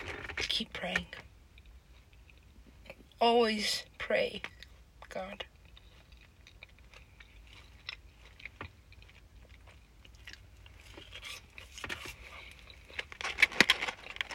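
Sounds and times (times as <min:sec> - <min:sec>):
speech: 0:00.6 - 0:01.3, 0:03.2 - 0:04.6, 0:05.2 - 0:05.5
person chewing McDonald's food: 0:01.4 - 0:03.0, 0:04.5 - 0:14.3.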